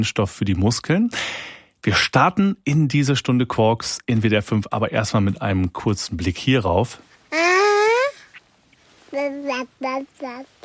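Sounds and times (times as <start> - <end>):
speech: 0.0 - 7.1, 9.1 - 10.6
baby babbling: 7.3 - 8.4, 9.1 - 10.6.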